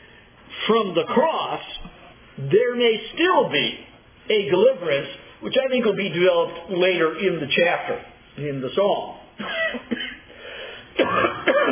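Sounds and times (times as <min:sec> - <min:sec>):
speech: 0:00.7 - 0:01.8, 0:02.4 - 0:09.8
person coughing from a cough, possibly allergies or a head cold: 0:09.5 - 0:10.3, 0:11.0 - 0:11.7.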